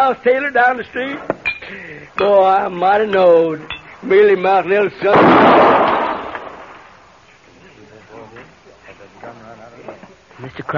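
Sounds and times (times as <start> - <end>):
speech: 0.0 - 5.9, 10.6 - 10.7
gunshot from a trick shot aimed at a glass held in a hand: 5.1 - 6.9.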